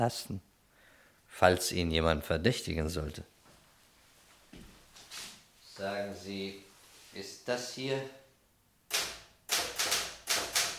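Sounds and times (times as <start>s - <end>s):
speech: 0.0s - 0.5s, 1.3s - 3.3s, 5.8s - 8.2s
typing on a Remington typewriter: 8.9s - 10.7s.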